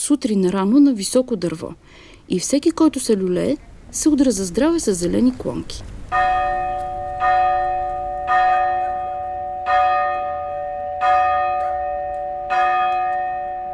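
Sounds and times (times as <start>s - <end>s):
speech: 0.0s - 6.4s
festive church bells pealing: 6.1s - 13.7s.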